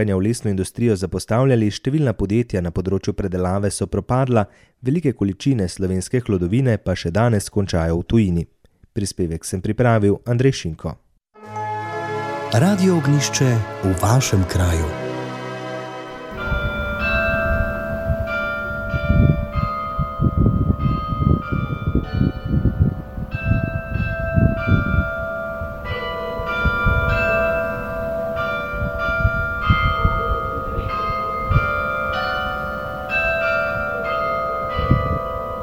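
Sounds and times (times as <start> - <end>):
speech: 0.0 - 11.6, 12.5 - 15.0
church carillon bells playing a slow melodic tune: 11.4 - 35.6.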